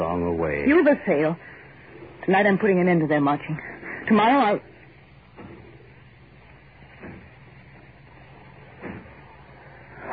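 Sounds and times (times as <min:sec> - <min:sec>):
steady hum: 0:00.0 - 0:10.1
speech: 0:00.4 - 0:01.5, 0:02.3 - 0:04.7
dull heavy thuds of factory doors being broken down: 0:06.9 - 0:09.9.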